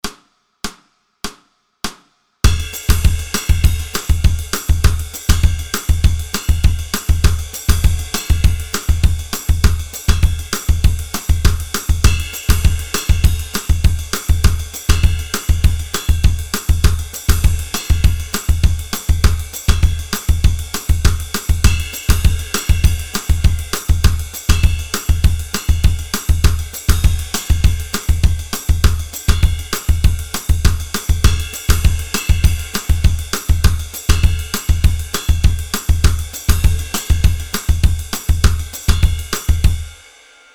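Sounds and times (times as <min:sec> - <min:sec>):
drum groove: 0:00.0 - 0:40.2.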